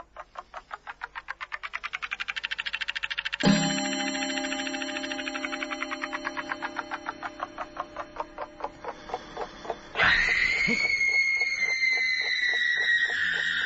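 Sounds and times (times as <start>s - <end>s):
steady rhythmic pulsing: 2.1s - 13.0s.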